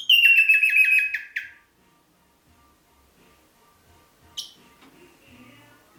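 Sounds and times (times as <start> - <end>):
red-rumped parrot Psephotus haematonotus warbling song: 0.0 - 1.6, 4.4 - 4.6.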